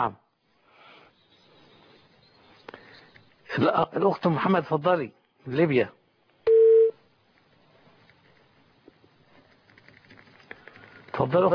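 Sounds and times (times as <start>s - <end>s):
speech: 0.0s - 0.2s, 3.5s - 6.0s, 11.2s - 11.5s
telephone beep marking a dropped phone call: 6.5s - 7.0s.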